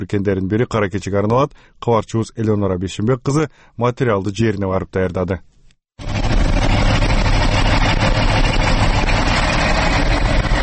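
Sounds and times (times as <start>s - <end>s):
speech: 0.0s - 6.1s
coal trucks idling in a queue at a coal mine: 6.0s - 10.6s.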